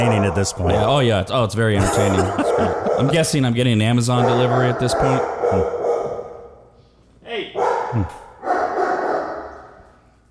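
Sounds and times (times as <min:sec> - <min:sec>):
dogs barking indoors: 0:00.0 - 0:01.2, 0:01.8 - 0:06.7, 0:07.5 - 0:10.0
speech: 0:00.0 - 0:05.8
person murmuring in an indoor room: 0:01.8 - 0:03.2
laughter: 0:01.8 - 0:03.6.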